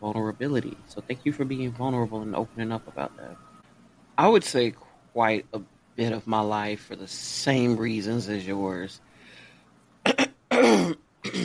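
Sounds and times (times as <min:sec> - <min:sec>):
speech: 0:00.0 - 0:03.5, 0:04.2 - 0:09.1
person clearing throat after laughing: 0:10.1 - 0:11.4.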